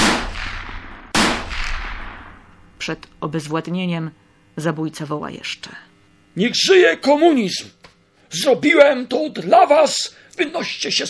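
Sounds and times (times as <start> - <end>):
loud gunshots with long decay: 0.0 - 2.6
speech: 2.9 - 11.0.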